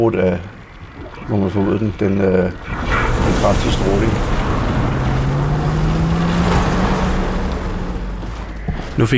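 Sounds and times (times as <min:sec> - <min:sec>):
speech: 0:00.0 - 0:00.6, 0:01.3 - 0:04.4, 0:09.0 - 0:09.1
heavy truck engine rumbling and straining while breaking down: 0:00.0 - 0:09.1.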